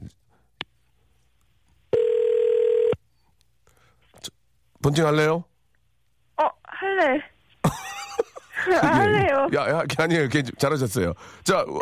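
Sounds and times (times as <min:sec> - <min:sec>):
telephone line buzz-tone as a call is placed: 0:01.9 - 0:03.0
speech: 0:04.8 - 0:05.5, 0:08.7 - 0:11.7
laughter: 0:07.6 - 0:09.5.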